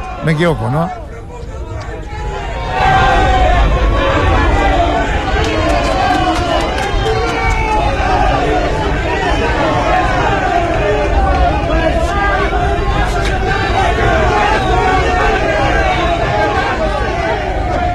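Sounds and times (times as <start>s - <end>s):
large stadium crowd roaring: 0.0s - 17.9s
speech: 0.2s - 1.0s.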